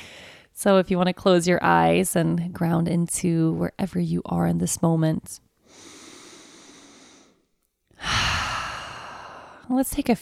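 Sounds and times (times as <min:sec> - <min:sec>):
deep breath in and out: 0:00.0 - 0:00.5, 0:05.6 - 0:09.7
speech: 0:00.6 - 0:05.9, 0:09.7 - 0:10.2.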